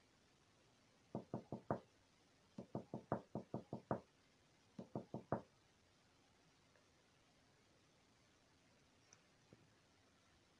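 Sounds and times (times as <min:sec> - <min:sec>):
soft quick taps on a window: 0:01.1 - 0:01.8, 0:02.6 - 0:04.0, 0:04.8 - 0:05.4.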